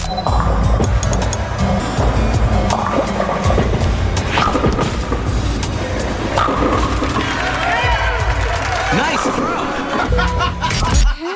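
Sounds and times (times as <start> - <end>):
video game bowling with rolling and crashing pins: 0.4 - 10.5
crowd clapping: 6.8 - 10.1
people laughing: 8.6 - 11.3.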